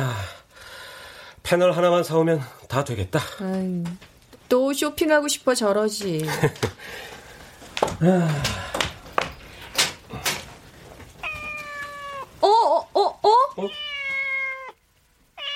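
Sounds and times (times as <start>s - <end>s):
speech: 1.5s - 7.2s, 8.0s - 8.7s, 13.6s - 13.8s
laughter: 6.2s - 6.8s
cat meowing: 11.2s - 12.4s, 13.5s - 15.5s
person making short surprised exclamations: 12.4s - 13.8s.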